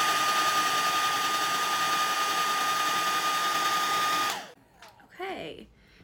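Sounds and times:
hair dryer blowing on a metal eyelash curler to heat it: 0.0s - 4.6s.

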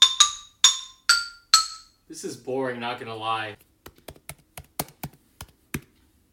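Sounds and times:
keys struck on a xylophone missing some keys: 0.0s - 2.0s
speech: 2.1s - 3.7s.

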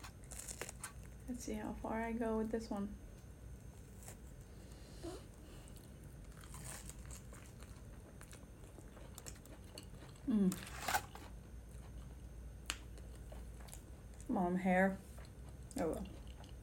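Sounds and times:
person biting and chewing crisp food: 0.0s - 1.3s, 5.2s - 14.3s, 15.0s - 16.6s
speech: 1.3s - 3.1s, 10.4s - 10.7s, 14.5s - 15.0s, 15.8s - 16.2s.

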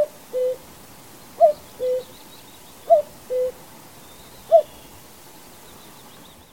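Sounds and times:
common cuckoo giving falling two-note cu-coo: 0.0s - 0.6s, 1.4s - 2.2s, 2.8s - 3.6s, 4.2s - 4.9s.

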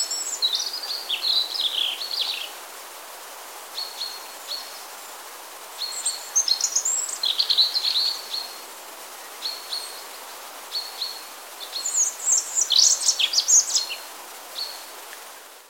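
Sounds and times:
European robin singing whistles and trills: 0.0s - 2.5s, 5.8s - 8.6s, 10.7s - 14.0s.

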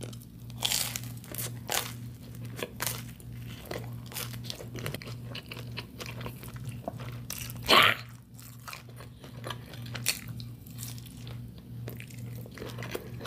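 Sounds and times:
low electrical hum: 0.0s - 13.2s
person eating a soft creamy snack: 0.0s - 13.2s
loud gulp swallowing too much snack: 7.6s - 8.1s.

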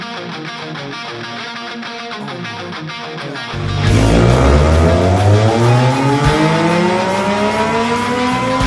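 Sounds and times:
Triumph Tiger 800 motorcycle engine with aftermarket exhaust revving: 3.6s - 8.6s.

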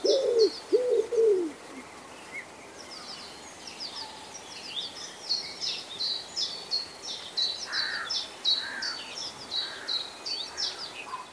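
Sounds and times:
common wood pigeon cooing: 0.0s - 1.8s
small birds twittering high: 0.0s - 11.3s.

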